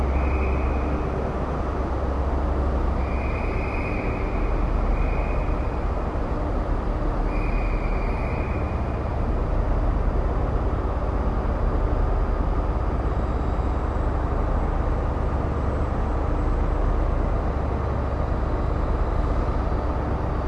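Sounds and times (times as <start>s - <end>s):
sub tunnel noise: 0.0s - 20.4s.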